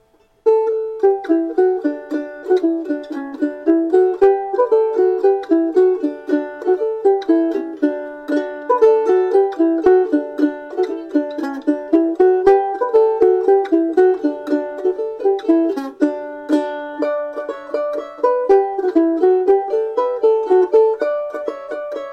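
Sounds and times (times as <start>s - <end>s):
Irish mandolin playing polkas: 0.0s - 22.1s.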